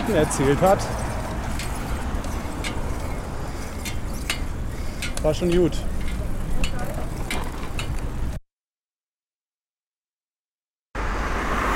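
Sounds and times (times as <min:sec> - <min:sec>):
cars passing on a road: 0:00.0 - 0:08.4, 0:11.0 - 0:11.7
speech: 0:00.1 - 0:01.1, 0:05.2 - 0:05.9.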